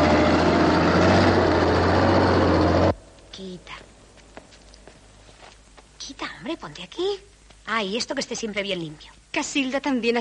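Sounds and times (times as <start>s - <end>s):
garbage truck engine rumble driving through city streets: 0.0s - 3.0s
speech: 6.9s - 10.1s.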